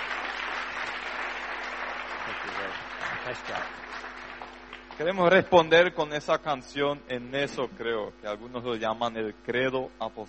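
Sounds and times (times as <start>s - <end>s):
sustained applause from a sizable audience: 0.0s - 5.4s
speech: 2.5s - 4.2s, 5.0s - 10.2s.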